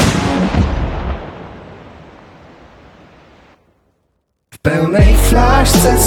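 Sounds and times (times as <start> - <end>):
single loud gunshot with tail: 0.0 - 1.6
speech: 4.6 - 6.0.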